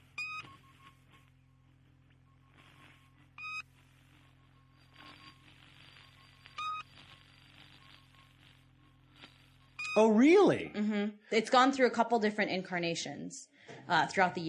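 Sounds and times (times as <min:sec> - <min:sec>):
shortwave radio station beep pips: 0:00.0 - 0:10.2
speech: 0:10.0 - 0:14.4.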